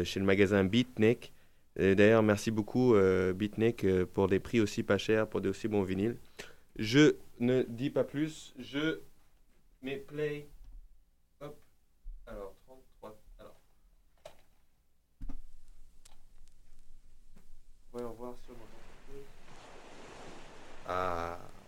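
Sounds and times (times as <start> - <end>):
speech: 0.0 - 9.1, 9.8 - 10.6, 11.4 - 11.6, 20.9 - 21.4
sea waves: 18.0 - 21.6.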